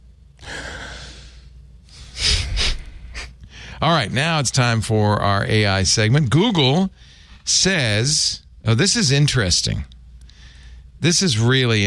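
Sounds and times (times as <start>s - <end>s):
person taking a deep breath: 0.4s - 3.8s, 10.2s - 10.9s
speech: 3.8s - 10.0s, 11.0s - 11.8s.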